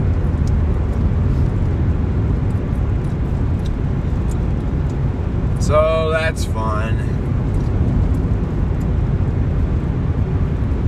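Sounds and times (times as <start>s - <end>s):
engine and tire rumble inside a moving car: 0.0s - 10.8s
surrounding traffic: 0.0s - 10.8s
speech: 5.7s - 7.1s.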